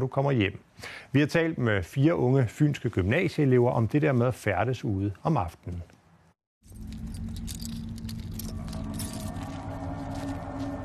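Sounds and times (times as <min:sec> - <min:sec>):
speech: 0:00.0 - 0:06.0
keys jangling clamped between fingers: 0:06.6 - 0:10.2.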